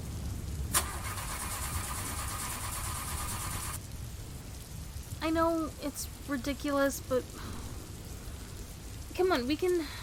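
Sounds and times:
constant low rumble of noise: 0.0s - 10.0s
car engine starter cranking: 0.7s - 3.7s
speech: 5.3s - 7.6s, 9.2s - 10.0s.

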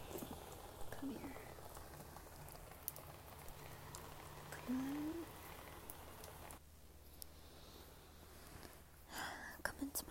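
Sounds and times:
soft steady rain: 0.0s - 10.0s
drips popping: 0.1s - 6.6s
speech: 1.0s - 1.4s, 4.7s - 5.1s.

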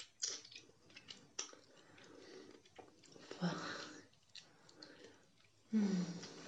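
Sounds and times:
loud sustained slurp: 0.0s - 6.4s
person chewing food with wet mouth sounds: 0.0s - 6.4s.

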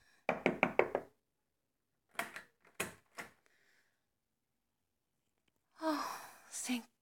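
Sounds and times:
firm knocking on a door: 0.3s - 1.1s
speech: 6.7s - 6.9s.

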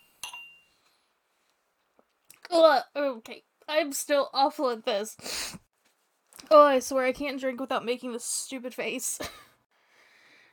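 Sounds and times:
drinking glasses clinking in a toast: 0.0s - 0.8s
speech: 2.5s - 5.6s, 6.4s - 9.4s.

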